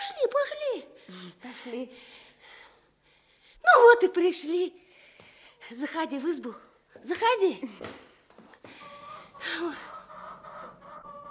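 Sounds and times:
speech: 0.2s - 2.2s, 3.7s - 4.8s, 5.6s - 8.1s, 9.4s - 9.9s
chicken clucking: 8.8s - 11.3s.

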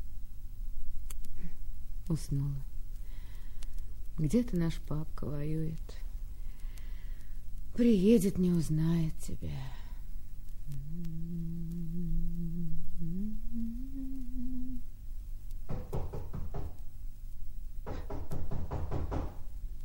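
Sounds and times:
speech: 2.1s - 2.7s, 4.2s - 6.0s, 7.8s - 9.8s
steady wavering tone: 10.7s - 14.9s
loud knocking on a door: 15.7s - 16.8s, 17.8s - 19.5s.

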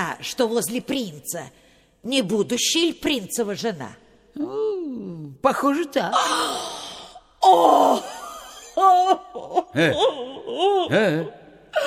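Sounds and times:
speech: 0.0s - 6.6s, 7.4s - 8.1s, 8.8s - 11.8s
woman crying with sobs and whimpering wails: 6.1s - 6.7s, 7.4s - 11.8s.

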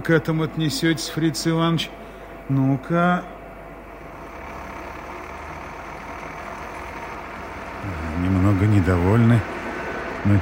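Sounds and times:
speech: 0.0s - 3.4s, 8.5s - 9.6s, 10.2s - 10.4s
machine revving up to machine a part: 4.0s - 10.4s.

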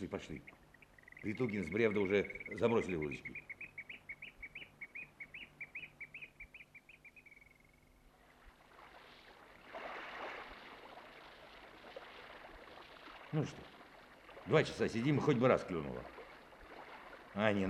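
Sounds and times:
speech: 0.0s - 0.6s, 1.2s - 3.5s, 13.3s - 13.7s, 14.4s - 16.2s, 17.3s - 17.6s
nightingale singing: 0.1s - 7.9s
water sloshing and splashing: 8.1s - 17.6s.

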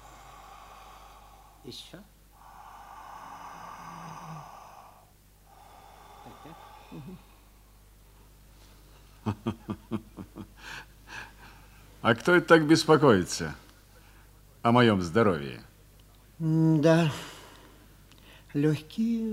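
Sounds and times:
deep breathing during a medical examination: 0.0s - 7.9s
soft hiss: 0.0s - 19.3s
speech: 1.6s - 2.2s, 6.9s - 7.3s, 9.3s - 10.8s, 12.0s - 13.6s, 14.6s - 15.7s, 16.4s - 17.3s, 18.6s - 19.3s.

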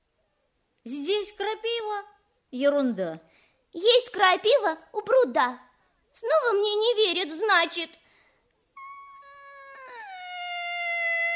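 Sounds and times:
speech: 0.8s - 8.0s
child crying in a long drawn-out wail: 8.8s - 11.3s.

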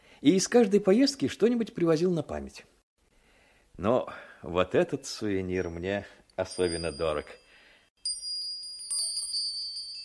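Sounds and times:
speech: 0.2s - 2.8s, 3.8s - 7.4s
Valdai bells, small metal bells, jingling: 6.4s - 10.0s.

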